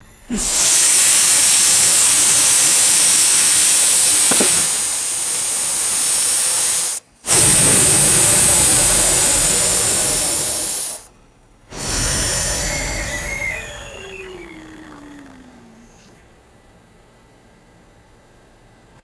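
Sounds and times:
high pressure steam radiator air burst: 0.2s - 11.1s, 11.7s - 15.9s.

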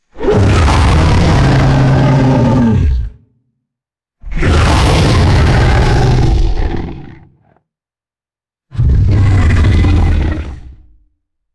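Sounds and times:
deep crackly creature roar: 0.2s - 3.2s, 4.3s - 7.6s, 8.7s - 11.0s.

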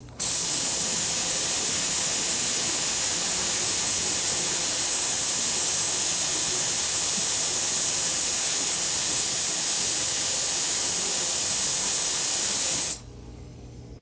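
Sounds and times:
compressed air can spray hiss: 0.1s - 13.0s.

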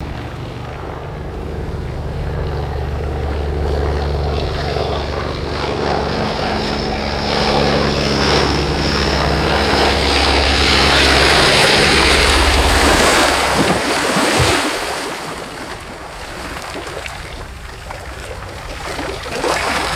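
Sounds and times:
float plane landing on water: 0.0s - 19.9s
water splashing from float plane landing: 10.4s - 19.9s.

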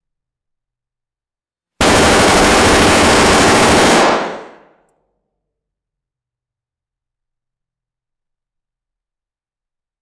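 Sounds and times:
distant automatic battle rifle gunfire burst: 1.8s - 4.7s.

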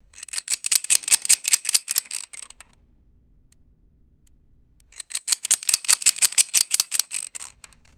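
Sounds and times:
metallic revolver cylinder spinning clicks: 0.2s - 2.7s, 5.0s - 7.9s.

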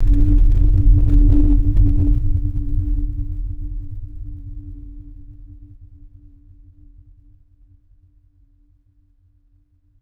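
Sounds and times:
deep synthetic low frequency pulse: 0.0s - 3.0s.

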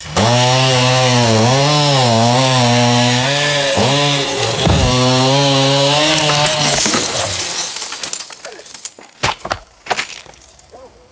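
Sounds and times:
chainsaw cutting wood: 0.0s - 10.4s
tree limb falling: 2.4s - 10.5s.

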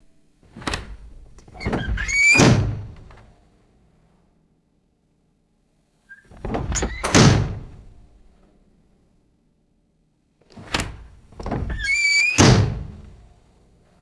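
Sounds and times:
squeaky hollow door opening and closing: 0.6s - 3.0s, 6.1s - 7.8s, 10.7s - 13.0s.

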